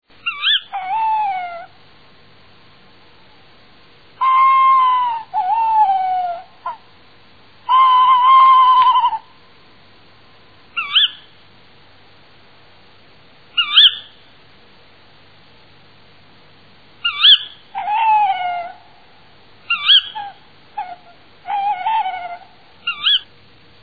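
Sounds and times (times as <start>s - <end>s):
tawny owl calling: 0.2s - 1.8s, 4.2s - 6.9s, 7.6s - 9.4s, 10.7s - 11.4s, 13.5s - 14.3s, 17.0s - 23.3s.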